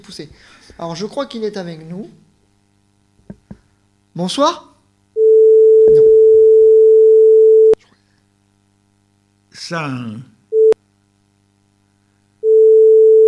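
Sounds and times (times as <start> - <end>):
speech: 0.0 - 2.2, 4.2 - 4.7, 9.6 - 10.3
telephone ringing tone on the line: 5.2 - 7.8, 12.4 - 13.2.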